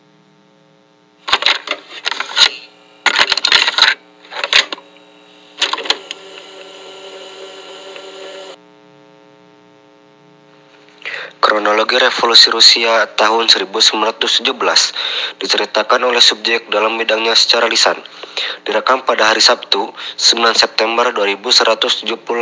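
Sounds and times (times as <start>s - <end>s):
steady electrical hum: 0.0s - 22.4s
audio recorder clicks and clatters from being switched on: 1.3s - 4.8s, 5.6s - 6.2s
speech: 11.6s - 22.4s.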